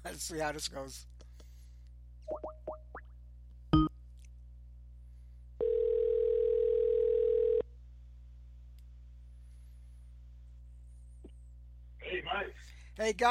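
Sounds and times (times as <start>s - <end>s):
speech: 0.1s - 1.1s, 13.0s - 13.2s
steady telephone dial tone: 5.6s - 7.6s.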